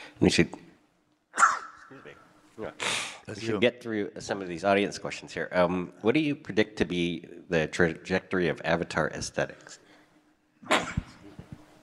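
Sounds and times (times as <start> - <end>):
speech: 0.2 - 0.7, 2.6 - 9.8, 10.6 - 11.1
person sneezing: 1.4 - 1.8, 10.6 - 11.3.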